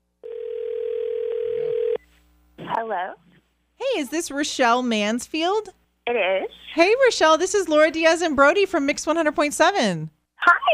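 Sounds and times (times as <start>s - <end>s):
electronic ringback tone from an outgoing phone call: 0.2s - 2.0s
speech: 2.8s - 10.7s.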